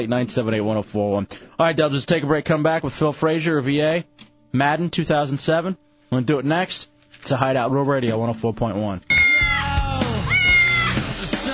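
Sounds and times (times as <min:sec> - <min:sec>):
speech: 0:00.0 - 0:09.2
steady low hum: 0:00.0 - 0:09.6
cat meowing: 0:09.1 - 0:11.0.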